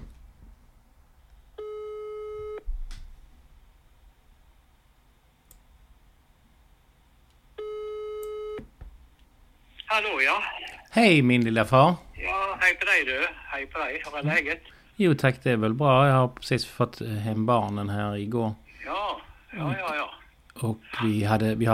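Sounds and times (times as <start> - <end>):
telephone ringback tone while phoning: 1.6 - 2.6, 7.6 - 8.6
speech: 10.0 - 12.0, 12.6 - 19.0, 19.6 - 21.7
person answering phone: 12.2 - 14.8, 18.8 - 20.2.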